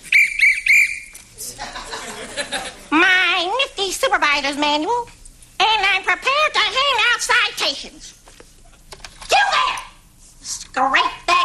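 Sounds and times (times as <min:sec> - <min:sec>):
shrill trilling whistle blasts: 0:00.0 - 0:01.2
soft noise: 0:00.0 - 0:11.4
laughter: 0:01.4 - 0:02.9
speech: 0:03.9 - 0:08.2.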